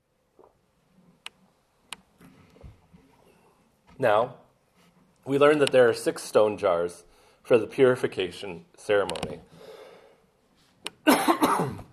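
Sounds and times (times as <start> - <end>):
speech: 4.0 - 4.4, 5.2 - 9.6
person coughing from a tickle in the throat: 11.0 - 11.9.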